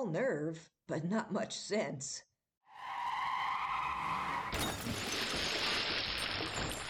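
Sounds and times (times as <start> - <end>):
speech: 0.0 - 3.0
car tire screech as a car skids: 2.7 - 4.6
car crashing through a fence with splintering debris: 4.4 - 6.8.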